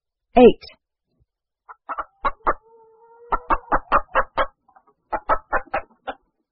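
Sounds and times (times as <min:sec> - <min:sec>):
speech: 0:00.4 - 0:00.8
hen clucking: 0:01.6 - 0:06.4.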